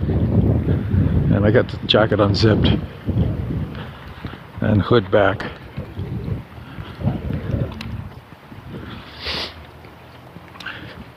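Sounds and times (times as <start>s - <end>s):
harsh wind buffeting the microphone outdoors on a mild 50-degree day: 0.0s - 11.1s
speech: 1.4s - 3.3s, 4.6s - 5.6s.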